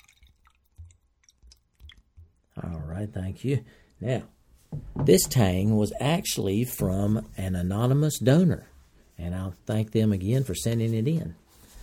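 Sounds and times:
water pouring into a glass: 0:00.0 - 0:02.7
speech: 0:03.0 - 0:11.4.

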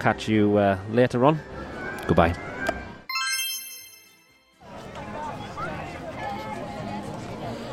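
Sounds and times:
speech: 0:00.0 - 0:02.5
busy outdoor crowd voices and bustle in a theme park plaza: 0:00.0 - 0:03.1, 0:04.5 - 0:07.7
bright chiming jingle: 0:03.1 - 0:04.6.

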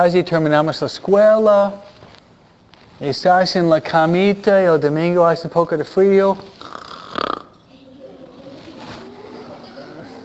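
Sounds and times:
speech: 0:00.0 - 0:01.9, 0:03.0 - 0:06.8
person imitating a child snoring: 0:06.6 - 0:07.6.

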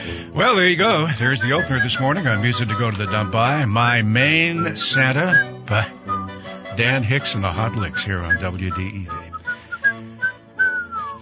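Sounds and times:
faint musical backing: 0:00.2 - 0:11.2
speech: 0:00.4 - 0:06.0, 0:06.8 - 0:09.3
person whistling: 0:01.2 - 0:03.6, 0:04.4 - 0:06.8, 0:07.6 - 0:11.2.

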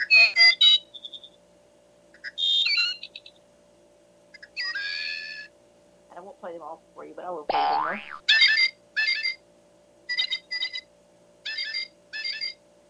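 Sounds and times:
recorded American bird calls including a robin from a small electronic speaker in a mug: 0:00.0 - 0:01.5, 0:02.1 - 0:03.5, 0:04.3 - 0:05.5, 0:08.3 - 0:09.4, 0:10.1 - 0:12.6
faint steady electronic hum: 0:00.0 - 0:12.8
speech: 0:06.4 - 0:08.3.

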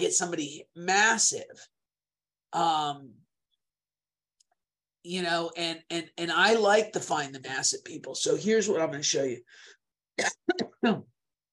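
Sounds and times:
speech: 0:00.0 - 0:01.8, 0:02.5 - 0:03.2, 0:05.0 - 0:11.1
person coughing: 0:10.2 - 0:11.1.

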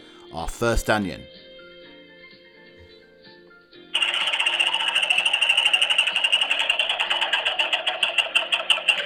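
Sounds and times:
speech: 0:00.3 - 0:01.3
prize wheel spinning with ratcheting clatter: 0:04.0 - 0:09.0.

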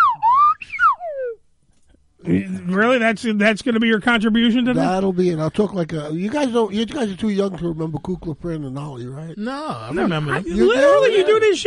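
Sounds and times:
whistle blowing: 0:00.0 - 0:01.3
speech: 0:02.3 - 0:11.6.

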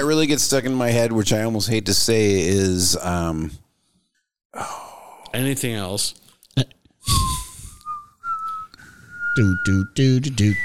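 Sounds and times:
speech: 0:00.0 - 0:03.6, 0:04.6 - 0:07.4, 0:09.4 - 0:10.6
person whistling a short wavering tune into a microphone: 0:07.0 - 0:10.6.

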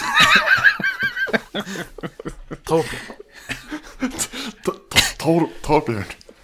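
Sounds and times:
man's strained laughing vocal sounds: 0:00.0 - 0:04.9
speech: 0:01.6 - 0:02.1, 0:02.7 - 0:03.1, 0:05.2 - 0:06.2
man coughing and sputtering after water down his throat: 0:02.6 - 0:05.5.

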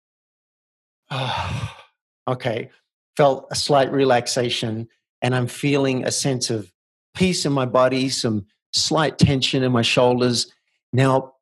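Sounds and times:
deep breath: 0:01.1 - 0:01.9
speech: 0:01.1 - 0:11.3.

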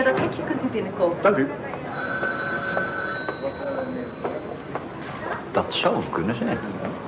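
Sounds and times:
speech: 0:00.0 - 0:02.4, 0:05.6 - 0:06.9
telephone ringing with a high electronic trill: 0:01.3 - 0:04.6.

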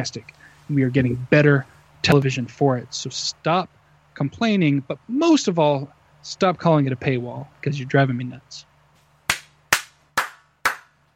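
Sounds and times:
speech: 0:00.0 - 0:08.7
faint low hum: 0:00.0 - 0:11.1
single person clapping hands: 0:09.3 - 0:11.1.

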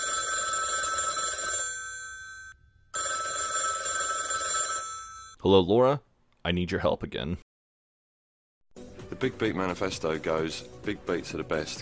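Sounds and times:
telephone bell ringing: 0:00.0 - 0:05.4
speech: 0:05.4 - 0:07.4, 0:09.2 - 0:11.8.

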